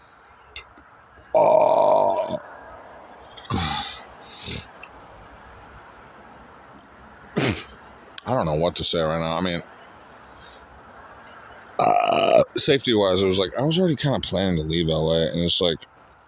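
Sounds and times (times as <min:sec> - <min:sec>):
person burping with hiccups: 0:01.4 - 0:02.4, 0:03.4 - 0:04.9, 0:11.8 - 0:12.6
speech: 0:01.4 - 0:02.4, 0:08.3 - 0:09.8, 0:12.6 - 0:15.9.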